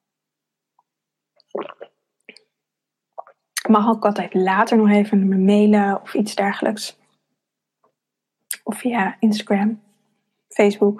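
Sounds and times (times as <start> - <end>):
wet gulping and swallowing: 1.4 - 2.5, 3.2 - 3.7
person taking a sip of water: 1.4 - 2.6, 3.2 - 3.7
speech: 3.7 - 7.0, 8.8 - 9.9, 10.6 - 10.9.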